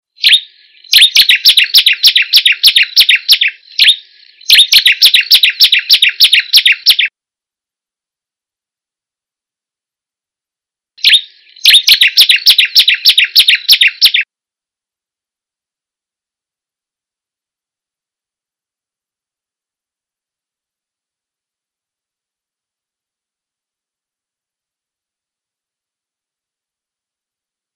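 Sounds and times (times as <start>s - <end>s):
ciblek kebun bird calling: 0.2s - 7.1s, 11.0s - 14.2s.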